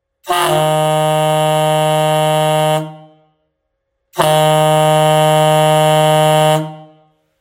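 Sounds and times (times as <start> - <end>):
740mm chrome fanfare horn deep tone without compressor: 0.2 - 7.4.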